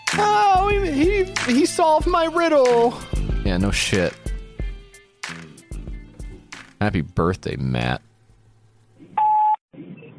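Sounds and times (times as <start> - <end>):
speech: 0.2 - 4.2, 6.8 - 8.1
phone electronic beep while redialing: 9.2 - 9.6.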